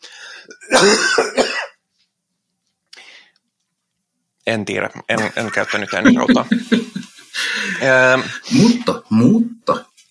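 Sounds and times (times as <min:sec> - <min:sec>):
loud forced cough: 0:00.6 - 0:01.8
speech: 0:00.7 - 0:01.5, 0:04.5 - 0:09.9
laughter: 0:05.2 - 0:08.8.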